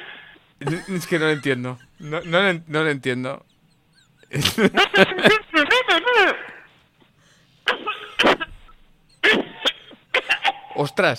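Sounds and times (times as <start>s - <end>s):
person coughing: 0.6s - 2.2s, 7.6s - 10.8s
laughter: 0.6s - 2.6s, 3.4s - 6.6s
speech: 0.7s - 3.5s, 4.3s - 5.4s, 10.9s - 11.1s.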